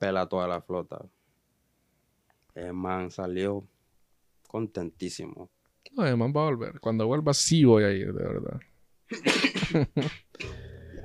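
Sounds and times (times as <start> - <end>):
speech: 0.0 - 1.2, 2.6 - 3.8, 4.5 - 10.6
person coughing: 9.1 - 11.0.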